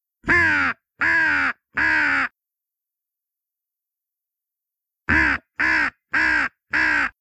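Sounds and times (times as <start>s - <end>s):
crows cawing: 0.3s - 2.3s, 5.1s - 7.1s.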